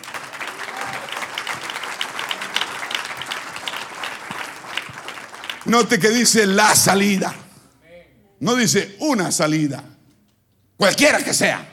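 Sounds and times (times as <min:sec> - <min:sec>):
church audience applauding during a sermon: 0:00.0 - 0:06.6
speech: 0:05.7 - 0:07.4, 0:08.4 - 0:09.9, 0:10.8 - 0:11.7.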